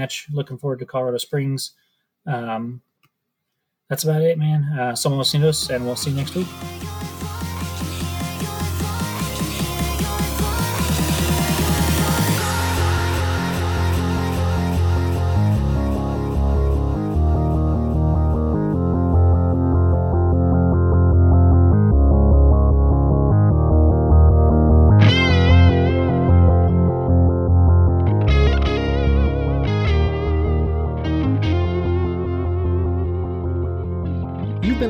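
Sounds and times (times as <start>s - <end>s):
speech: 0.0s - 2.9s, 3.9s - 7.0s
theme music with distorted effects-laden guitar over throbbing low end: 5.3s - 34.8s.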